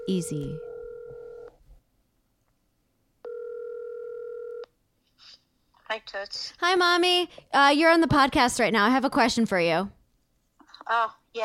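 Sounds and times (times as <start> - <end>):
telephone ringback tone: 0.0 - 1.5, 3.3 - 4.6
speech: 0.1 - 0.7, 5.9 - 10.0, 10.9 - 11.4.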